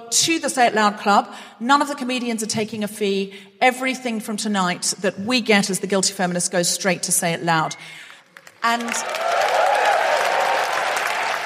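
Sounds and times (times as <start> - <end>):
speech: 0.1 - 9.4
large audience applause at a comedy charity show: 8.4 - 11.4.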